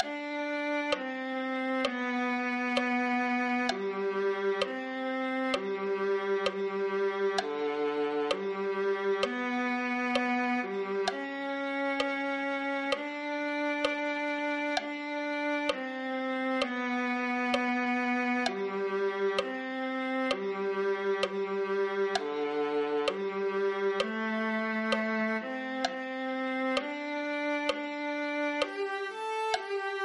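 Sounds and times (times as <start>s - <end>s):
viola: 0.0s - 30.0s.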